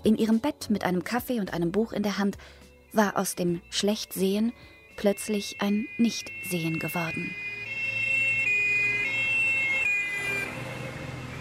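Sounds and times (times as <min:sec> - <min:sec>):
speech: 0:00.0 - 0:07.4
ambulance siren wailing in a two-tone hi-lo pattern: 0:04.4 - 0:11.4
low traffic rumble: 0:07.4 - 0:11.4.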